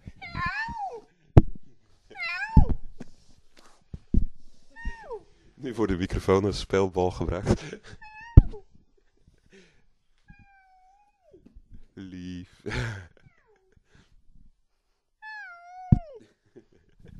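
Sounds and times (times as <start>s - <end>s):
playful young cat meowing: 0.2s - 1.0s, 2.1s - 2.8s, 4.8s - 5.2s, 8.0s - 8.7s, 10.3s - 11.4s, 15.2s - 16.2s
speech: 5.6s - 8.0s.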